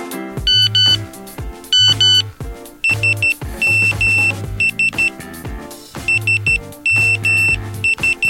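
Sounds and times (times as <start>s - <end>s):
mobile phone text-message tone: 0.4s - 1.1s, 1.7s - 5.2s, 6.0s - 8.2s.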